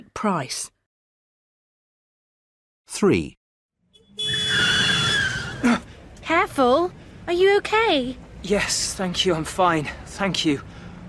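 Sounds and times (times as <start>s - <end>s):
speech: 0.2s - 0.8s, 2.9s - 3.4s, 6.3s - 10.8s
car tires squealing in a skid past a pedestrian: 4.2s - 5.6s.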